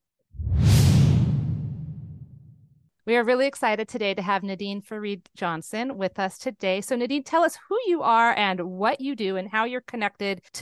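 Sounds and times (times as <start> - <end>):
loud whoosh transition sound effect with low rumble: 0.4 - 2.7
speech: 3.1 - 10.6.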